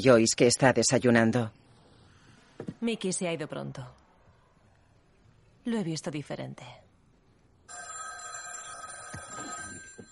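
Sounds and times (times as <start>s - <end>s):
speech: 0.0s - 1.6s, 2.6s - 4.0s, 5.6s - 6.9s
telephone bell ringing: 7.7s - 10.1s.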